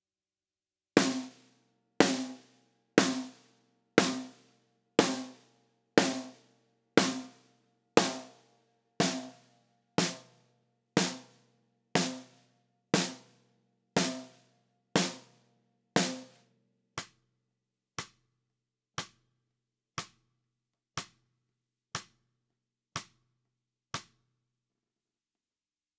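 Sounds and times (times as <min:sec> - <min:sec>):
snare drum: 0:01.0 - 0:01.4, 0:02.0 - 0:03.4, 0:04.0 - 0:04.4, 0:05.0 - 0:05.4, 0:06.0 - 0:06.4, 0:07.0 - 0:07.4, 0:08.0 - 0:08.3, 0:09.0 - 0:09.4, 0:10.0 - 0:10.3, 0:11.0 - 0:11.3, 0:12.0 - 0:12.4, 0:13.0 - 0:13.3, 0:14.0 - 0:14.4, 0:15.0 - 0:15.3, 0:16.0 - 0:16.4.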